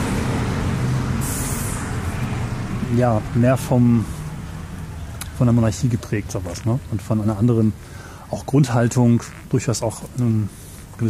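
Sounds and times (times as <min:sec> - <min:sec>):
bus engine idling: 0:00.0 - 0:09.2
bus air brakes hissing: 0:00.9 - 0:02.1
speech: 0:02.9 - 0:04.2, 0:05.4 - 0:11.0.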